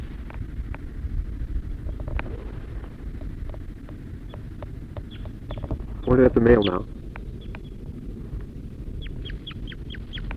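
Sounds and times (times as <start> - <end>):
low background rumble: 0.0 - 10.3
crossbill male and female calls at the nest: 4.2 - 7.8, 8.9 - 10.3
speech: 6.1 - 7.0.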